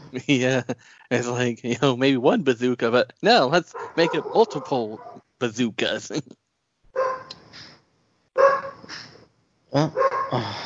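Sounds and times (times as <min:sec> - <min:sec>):
laughter: 0:00.0 - 0:06.3
speech: 0:00.1 - 0:06.4, 0:09.7 - 0:10.6
puppy barking high yappy barks: 0:03.7 - 0:05.2, 0:07.0 - 0:07.3, 0:08.4 - 0:08.8, 0:10.0 - 0:10.3.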